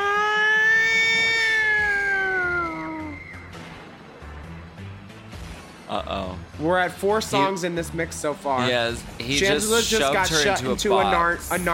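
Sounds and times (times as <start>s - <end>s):
siren wailing: 0.0s - 3.6s
speech: 6.0s - 11.7s.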